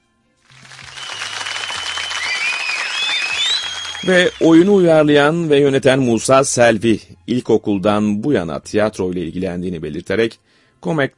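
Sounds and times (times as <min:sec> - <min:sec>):
applause from many people clapping: 0:00.5 - 0:04.9
speech: 0:04.0 - 0:11.1.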